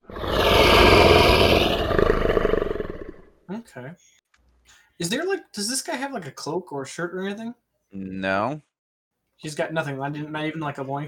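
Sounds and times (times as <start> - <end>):
long deep deafening roar from outside: 0.0 - 3.2
speech: 5.0 - 8.7, 9.4 - 11.0.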